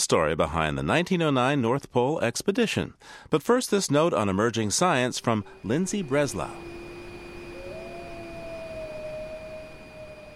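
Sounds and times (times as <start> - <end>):
speech: 0.0 - 6.8
wolf howling: 5.2 - 10.3.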